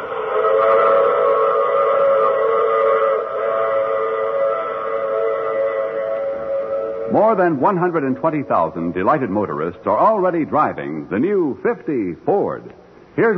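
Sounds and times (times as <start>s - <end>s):
train whistle blowing: 0.0s - 8.8s
speech: 7.3s - 13.3s.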